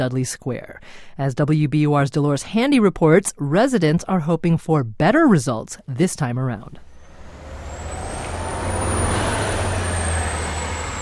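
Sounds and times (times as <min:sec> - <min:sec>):
speech: 0:00.0 - 0:06.9
bus engines droning at Dudley Station in Boston: 0:06.8 - 0:10.9
bus air brakes hissing: 0:06.9 - 0:10.9.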